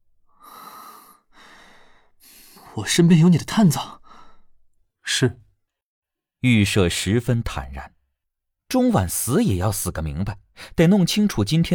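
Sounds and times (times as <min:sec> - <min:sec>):
deep breath: 0:00.3 - 0:02.8, 0:04.0 - 0:04.6
speech: 0:02.8 - 0:04.0, 0:05.2 - 0:05.4, 0:06.4 - 0:08.0, 0:08.7 - 0:11.7.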